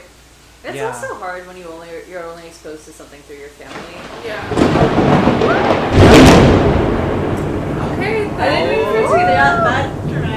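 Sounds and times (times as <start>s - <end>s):
speech: 0.6s - 6.0s, 8.0s - 10.2s
low sustained thunder rumbling: 3.7s - 10.3s.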